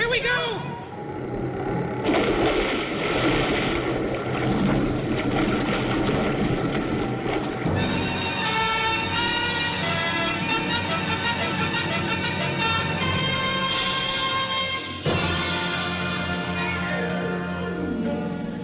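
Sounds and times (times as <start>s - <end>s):
strong wind over water: 0.0s - 10.9s
plane engines roaring while flying low over water: 0.0s - 18.6s.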